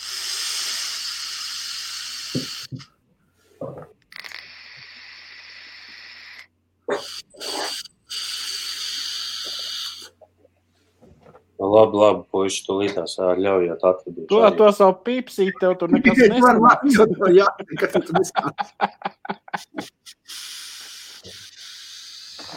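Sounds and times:
airy hissing draws on a vape device: 0.0s - 2.8s, 4.3s - 10.1s, 18.0s - 22.5s
speech: 11.7s - 19.0s
laughter: 15.4s - 20.2s.

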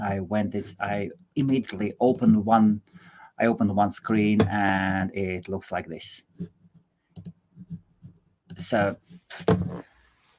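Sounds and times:
speech: 0.0s - 6.6s, 8.6s - 9.9s
computer keyboard typing: 7.2s - 7.8s.

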